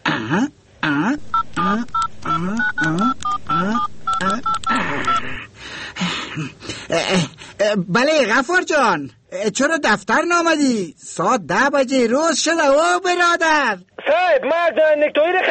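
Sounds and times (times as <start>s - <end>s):
speech: 0.3s - 3.0s, 7.9s - 15.5s
touch-tone beeps of a telephone number being dialled: 1.2s - 5.4s.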